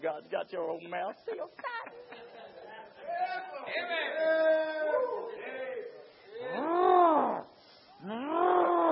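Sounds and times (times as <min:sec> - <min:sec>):
speech: 0:00.2 - 0:05.4
laughter: 0:01.2 - 0:03.2
person imitating lion roars: 0:06.4 - 0:08.8.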